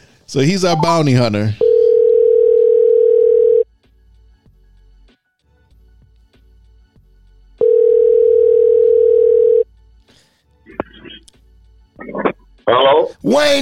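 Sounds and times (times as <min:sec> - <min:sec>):
speech: 0:00.3 - 0:01.6, 0:12.7 - 0:13.5
telephone ringback tone: 0:00.7 - 0:03.6, 0:07.6 - 0:09.6.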